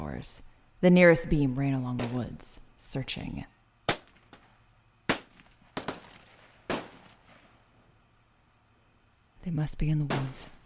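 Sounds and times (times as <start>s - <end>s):
speech: 0.2s - 3.5s, 9.5s - 10.6s
gunshots fired from a guard tower at a military base toward a wood line: 3.9s - 4.4s, 5.1s - 7.4s.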